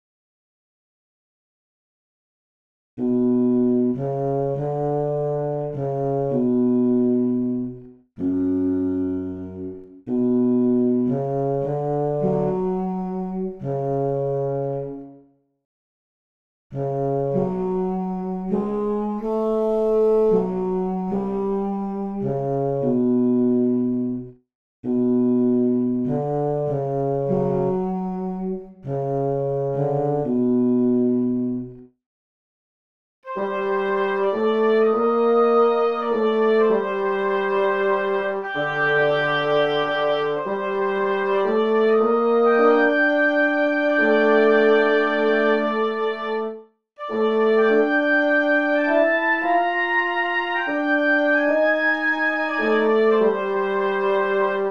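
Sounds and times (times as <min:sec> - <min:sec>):
bassoon tune: 0:03.0 - 0:15.2, 0:16.7 - 0:31.8, 0:33.3 - 0:54.6.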